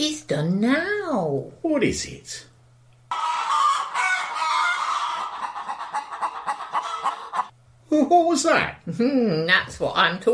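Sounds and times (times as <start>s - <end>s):
speech: 0.0s - 2.5s, 7.9s - 10.3s
chicken clucking and squawking: 3.1s - 7.5s.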